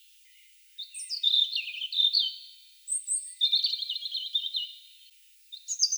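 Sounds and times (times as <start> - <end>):
European robin Erithacus rubecula singing: 0.2 - 4.8.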